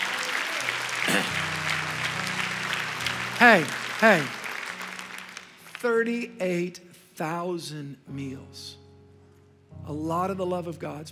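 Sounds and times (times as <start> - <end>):
crowd clapping in a large room: 0.0 - 6.7
speech: 1.2 - 1.4, 3.4 - 4.4, 5.8 - 8.8, 9.8 - 11.1.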